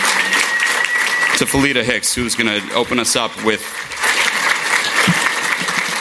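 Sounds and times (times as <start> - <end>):
sizable crowd applauding to welcome a speaker at a City Club event in Chicago: 0.0 - 5.9
speech: 1.4 - 4.2.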